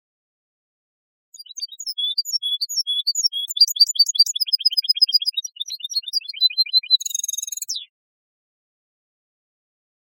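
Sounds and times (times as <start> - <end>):
European goldfinch song: 1.4 - 8.0.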